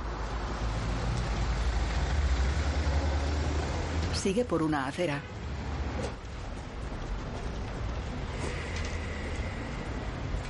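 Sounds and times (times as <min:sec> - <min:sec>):
street traffic of passing cars at a city crossing: 0:00.0 - 0:10.4
speech: 0:04.2 - 0:05.4.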